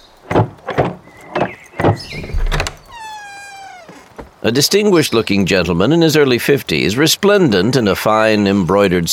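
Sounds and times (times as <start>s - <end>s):
heavy wooden thumps and rattles: 0.0s - 4.4s
house door creaking open: 0.3s - 4.5s
speech: 2.0s - 2.4s, 4.4s - 9.1s.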